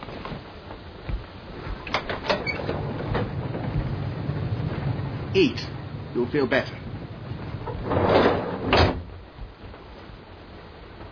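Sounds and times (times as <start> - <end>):
train rolling along the tracks: 0.0 - 11.1
speech: 5.3 - 6.8.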